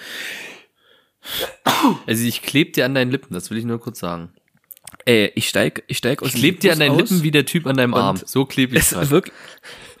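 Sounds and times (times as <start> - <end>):
person sneezing: 1.3 - 2.1
speech: 1.8 - 4.4, 5.0 - 9.9.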